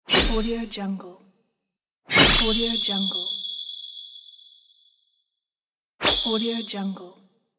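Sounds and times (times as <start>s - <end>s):
anime sword shine effect: 0.1s - 0.9s, 2.1s - 4.7s, 6.0s - 6.8s.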